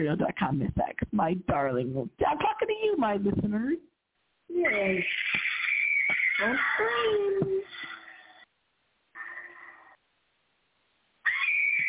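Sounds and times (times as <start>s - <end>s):
speech: 0.0s - 3.9s, 4.6s - 5.4s, 6.4s - 7.6s
woman screaming in a shrill piercing voice: 4.6s - 7.7s, 11.2s - 11.8s.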